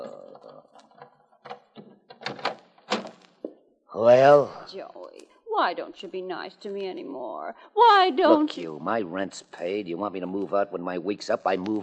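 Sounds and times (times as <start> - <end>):
door lock and handle clicking and rattling as a door is unlocked: 0.9 - 3.3
speech: 4.0 - 5.0, 5.6 - 11.8.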